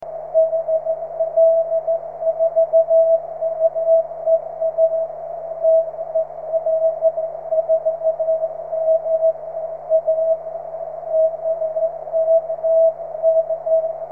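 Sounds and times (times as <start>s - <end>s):
13cm continuous wave signal: 0.0s - 14.1s.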